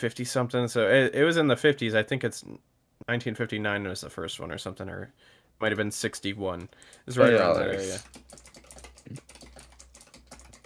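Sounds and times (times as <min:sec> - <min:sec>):
speech: 0:00.0 - 0:08.5
typing on a computer keyboard: 0:08.0 - 0:10.6.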